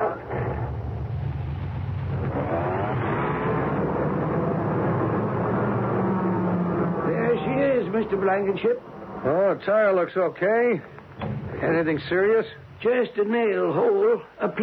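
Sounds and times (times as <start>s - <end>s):
car engine idling and revving while backing out of a repair shop: 0.0s - 7.8s
speech: 8.0s - 11.0s, 11.6s - 14.6s.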